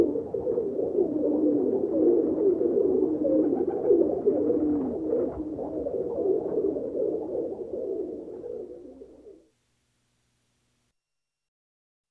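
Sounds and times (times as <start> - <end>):
pigeon cooing: 0.0 - 9.5.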